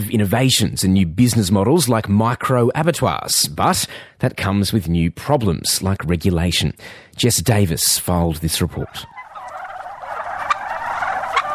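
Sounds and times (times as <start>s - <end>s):
speech: 0.0s - 9.2s
turkeys gobbling on a farm: 8.5s - 11.5s.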